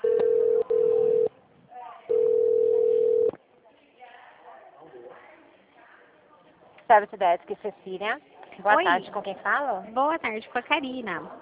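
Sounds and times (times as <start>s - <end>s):
telephone line beeps during a call transfer: 0.0s - 1.3s, 2.1s - 3.4s
low murmuring telephone line noise: 0.0s - 11.4s
speech: 6.9s - 11.4s.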